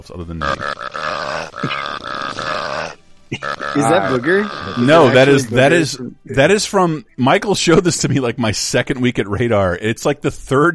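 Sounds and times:
speech: 0.0s - 10.7s
long loud cartoonish video game burp sound effect: 0.4s - 5.2s.

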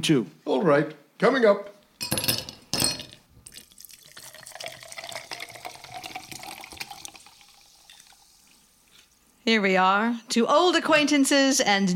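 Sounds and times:
speech: 0.0s - 1.7s, 9.5s - 11.9s
fizzing of sparkling mineral water: 3.4s - 9.3s
sparkling mineral water poured into a glass: 3.4s - 9.3s.

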